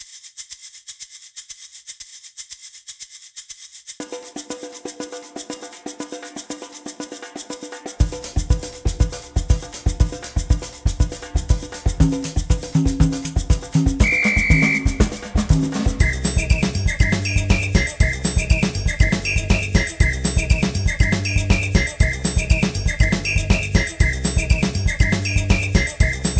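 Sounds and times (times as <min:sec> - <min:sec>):
instrumental backing track: 0:08.0 - 0:26.3.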